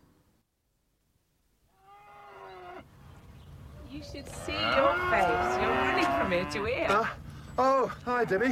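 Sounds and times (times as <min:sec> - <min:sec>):
cow mooing in a barn: 0:01.8 - 0:02.9, 0:04.3 - 0:07.1
speech: 0:04.0 - 0:08.5.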